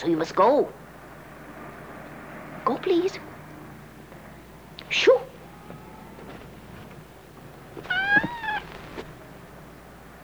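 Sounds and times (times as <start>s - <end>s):
speech: 0.0s - 0.8s, 2.7s - 3.3s, 4.9s - 5.2s
cat letting out a drawn-out meow: 4.7s - 9.8s.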